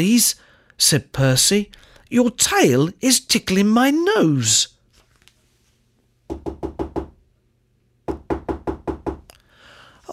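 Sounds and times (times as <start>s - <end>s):
speech: 0.0s - 4.8s
firm rhythmic knocking on a door: 6.3s - 7.2s, 8.1s - 9.3s.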